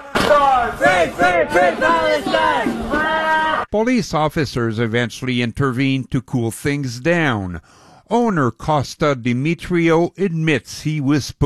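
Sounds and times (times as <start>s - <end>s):
crowd of protesters shouting and chanting: 0.0s - 3.7s
steady noise: 0.0s - 11.4s
speech: 0.4s - 3.0s, 3.7s - 11.4s.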